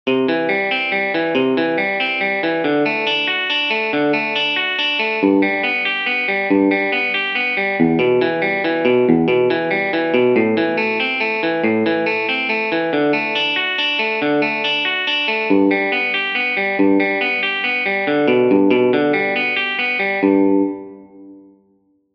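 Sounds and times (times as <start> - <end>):
arpeggio: 0.1 - 21.5.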